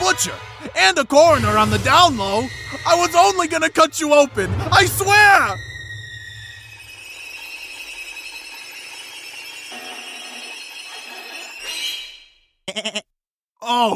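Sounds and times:
speech: 0:00.1 - 0:05.7, 0:12.8 - 0:13.0, 0:13.7 - 0:13.9
goat bleating: 0:12.7 - 0:13.1.

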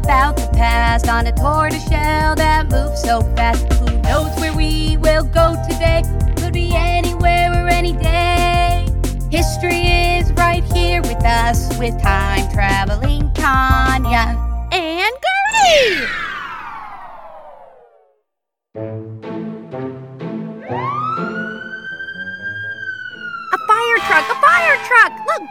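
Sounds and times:
speech: 0:00.2 - 0:16.2, 0:24.2 - 0:25.5
fire truck siren wailing: 0:15.5 - 0:18.1, 0:20.6 - 0:25.5.

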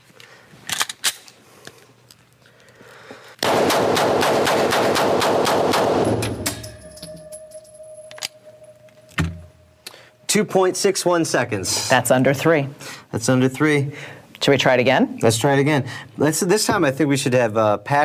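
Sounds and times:
gun fired in a timed rapid-fire run: 0:03.4 - 0:06.4
speech: 0:10.4 - 0:18.0.

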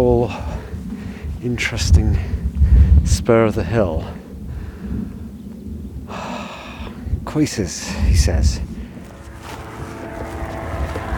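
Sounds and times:
speech: 0:00.0 - 0:00.5, 0:01.4 - 0:02.4, 0:03.0 - 0:04.2, 0:07.3 - 0:08.7
motorized paraglider microlight engine droning overhead: 0:08.1 - 0:11.1.

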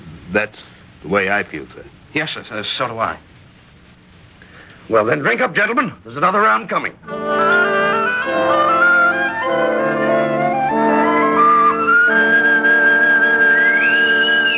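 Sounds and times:
speech: 0:00.3 - 0:03.3, 0:04.9 - 0:07.2
bosun's whistle piping aboard: 0:07.1 - 0:14.5.

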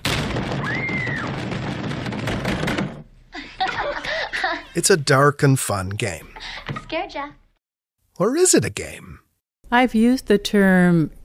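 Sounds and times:
heavy banging on a bathroom door: 0:00.0 - 0:03.2
laughter: 0:03.3 - 0:04.8
speech: 0:04.8 - 0:07.4, 0:08.2 - 0:11.2.

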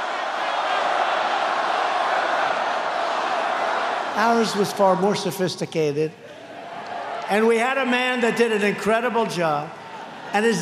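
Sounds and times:
large crowd chanting and yelling: 0:00.0 - 0:04.1
speech: 0:04.2 - 0:06.3, 0:07.3 - 0:10.5.

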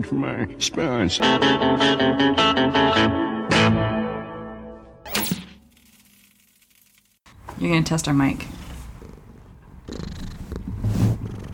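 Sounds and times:
speech: 0:00.0 - 0:03.8, 0:07.6 - 0:08.6
cat purring against the microphone: 0:08.4 - 0:11.5.

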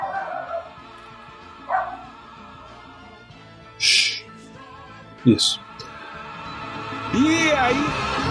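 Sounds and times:
dog barking: 0:00.0 - 0:00.8, 0:01.7 - 0:02.2
speech: 0:05.2 - 0:05.7, 0:07.1 - 0:08.2.

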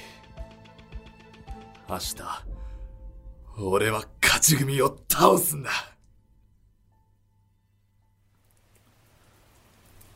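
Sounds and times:
rain hissing and pattering: 0:01.8 - 0:06.5, 0:08.2 - 0:10.1
speech: 0:01.9 - 0:02.5, 0:03.6 - 0:05.9.

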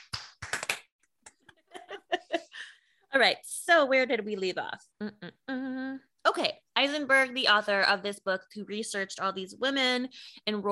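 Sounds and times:
hands clapping: 0:00.0 - 0:01.6
speech: 0:03.2 - 0:05.6, 0:06.4 - 0:10.7.

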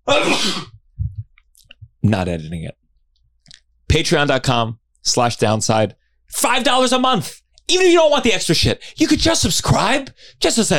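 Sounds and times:
loud sneeze: 0:00.0 - 0:00.8
speech: 0:00.1 - 0:00.7, 0:02.1 - 0:02.8, 0:03.9 - 0:10.7.

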